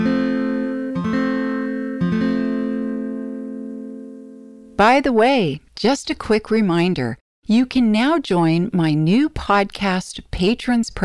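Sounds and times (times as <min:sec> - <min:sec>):
guitar F chord strummed on strings 4, 3 and 2: 0:00.0 - 0:04.8
speech: 0:04.8 - 0:11.0.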